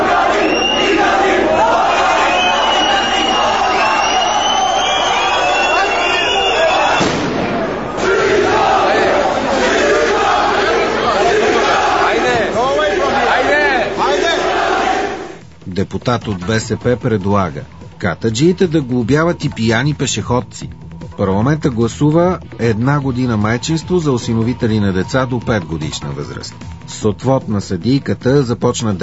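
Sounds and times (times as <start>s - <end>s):
large crowd shouting at the airport in Yerevan Armenia: 0.0s - 15.4s
firecracker burst at the airport in Yerevan Armenia: 6.5s - 8.6s
speech: 15.9s - 29.0s.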